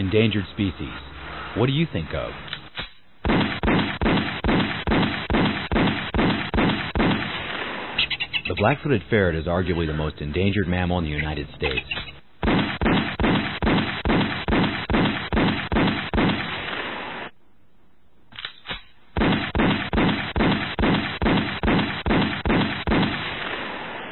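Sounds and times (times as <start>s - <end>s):
speech: 0.0s - 2.5s, 8.6s - 12.1s
rapid series of loud gunshots: 2.8s - 8.7s, 12.4s - 17.3s, 18.7s - 24.1s.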